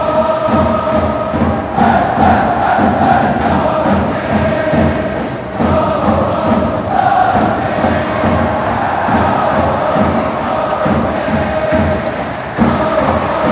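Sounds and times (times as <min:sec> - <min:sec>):
dense football supporter crowd chanting and singing in a stadium: 0:00.0 - 0:13.5.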